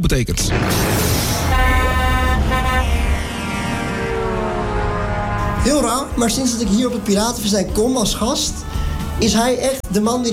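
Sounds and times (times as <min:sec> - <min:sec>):
speech: 0:00.0 - 0:01.3, 0:05.6 - 0:10.3
low rumbling engine: 0:00.8 - 0:09.2
vehicle horn blaring: 0:01.3 - 0:09.3.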